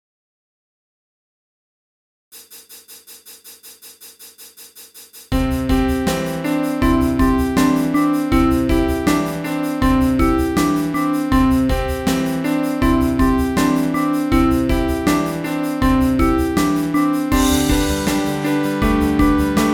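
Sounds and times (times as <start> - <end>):
folk tune melody coded in Sonic Pi: 5.4 - 19.7.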